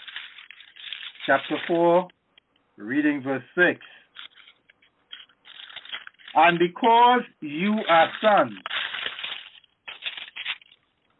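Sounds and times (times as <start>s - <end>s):
Bible pages being turned by several people: 0.0s - 2.1s, 4.1s - 6.4s, 7.6s - 10.8s
speech: 1.3s - 2.2s, 2.8s - 4.0s, 6.4s - 8.7s.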